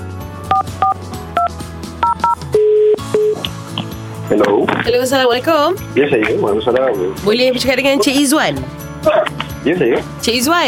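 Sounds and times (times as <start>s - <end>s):
two-tone telephone keypad beeps: 0.5s - 1.0s, 2.0s - 3.4s
speech: 4.3s - 10.6s.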